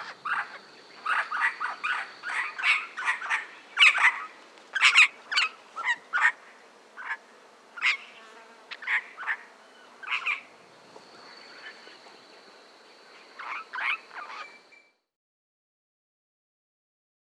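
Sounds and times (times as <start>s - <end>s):
regent parrot of the eastern subspecies in Australia giving rasping scratchy calls: 0.0s - 6.4s, 7.8s - 8.1s, 8.8s - 10.5s, 13.4s - 14.6s.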